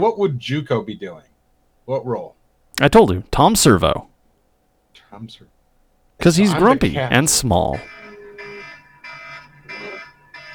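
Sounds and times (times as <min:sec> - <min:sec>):
speech: 0:00.0 - 0:01.3, 0:01.9 - 0:04.1, 0:05.1 - 0:05.6, 0:06.2 - 0:08.0
phone alarm electronic tone bursts: 0:07.8 - 0:10.5.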